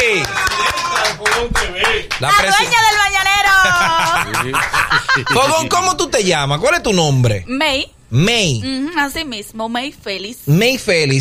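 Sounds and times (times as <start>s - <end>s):
hand claps: 0.0s - 3.0s
speech: 0.2s - 11.1s
laughter: 3.4s - 6.0s.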